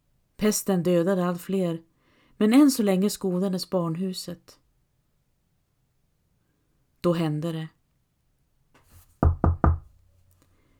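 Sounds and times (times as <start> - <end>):
speech: 0.4 - 4.6, 7.0 - 7.8
firm knocking on a wooden door: 9.2 - 10.0.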